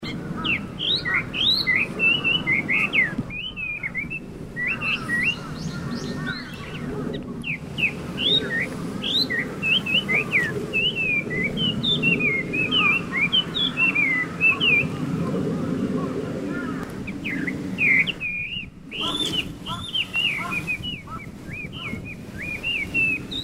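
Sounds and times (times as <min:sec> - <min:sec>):
Chinese hwamei laughingthrush singing: 0:00.0 - 0:23.4.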